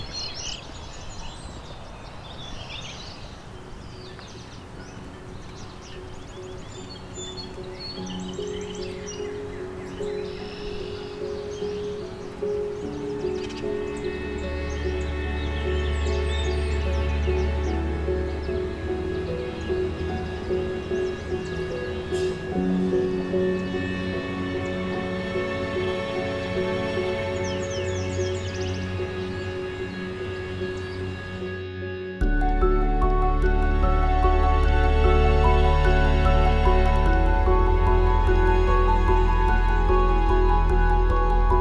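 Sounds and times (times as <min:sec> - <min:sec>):
outdoor bird calls: 0:00.0 - 0:31.7
song sparrow singing: 0:00.0 - 0:41.6.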